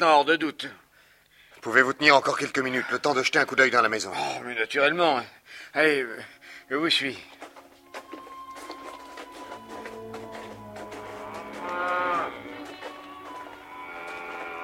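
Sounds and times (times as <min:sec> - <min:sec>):
speech: 0:00.0 - 0:00.8, 0:01.6 - 0:07.4
cows mooing: 0:07.2 - 0:14.6.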